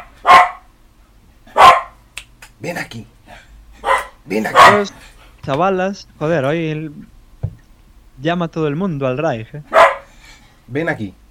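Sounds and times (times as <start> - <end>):
dog barking: 0.0 - 0.7, 1.5 - 2.0, 3.8 - 4.9, 9.7 - 10.1
speech: 2.6 - 3.4, 4.3 - 7.1, 8.2 - 9.8, 10.7 - 11.2.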